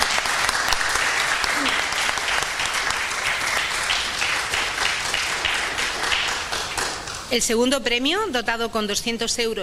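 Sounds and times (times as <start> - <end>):
audience applause: 0.0 - 7.3
speech: 7.3 - 9.6.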